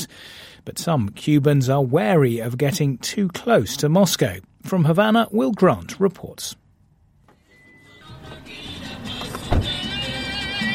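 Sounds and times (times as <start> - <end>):
speech: 0.0 - 6.6
car engine humming inside the vehicle while driving in Cuba: 7.8 - 10.7
dull thump: 9.2 - 9.9.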